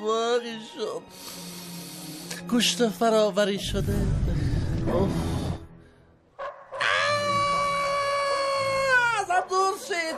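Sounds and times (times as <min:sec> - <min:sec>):
speech: 0:00.0 - 0:01.6, 0:02.5 - 0:05.4
wolves howling: 0:06.4 - 0:10.1.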